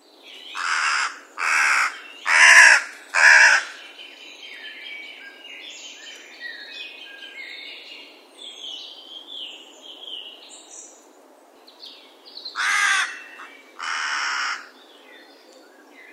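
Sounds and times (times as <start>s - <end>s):
songbirds twittering and whistling: 0.0s - 16.1s
carrion crow Corvus corone cawing: 0.6s - 3.8s, 12.6s - 14.7s.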